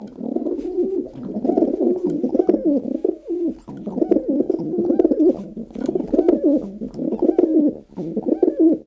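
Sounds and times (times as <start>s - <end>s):
dove cooing: 0.0s - 8.8s.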